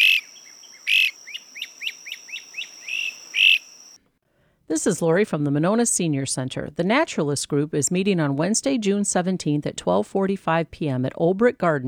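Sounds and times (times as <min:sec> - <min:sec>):
bird singing: 0:00.0 - 0:04.0
speech: 0:04.7 - 0:11.8.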